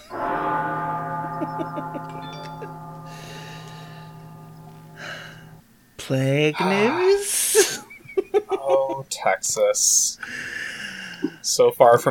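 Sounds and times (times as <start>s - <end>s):
deep bell ringing with shimmering overtones: 0.0s - 6.6s
speech: 1.5s - 2.8s, 6.1s - 7.6s, 8.6s - 10.6s, 11.5s - 12.1s.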